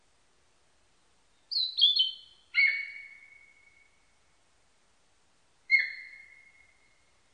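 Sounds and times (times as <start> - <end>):
Narcissus flycatcher singing whistled notes: 1.5 - 3.9, 5.7 - 7.0.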